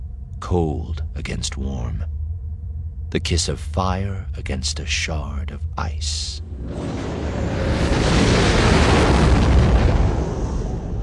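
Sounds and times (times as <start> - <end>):
speech: 0.4 - 2.2, 3.1 - 7.2
ship exploding as it is destroyed: 6.5 - 11.0.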